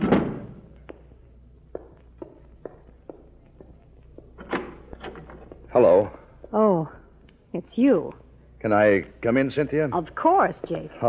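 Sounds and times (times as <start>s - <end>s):
door thudding shut: 0.0s - 0.6s
soft footsteps crossing a room: 0.6s - 8.3s
speech: 5.8s - 11.0s.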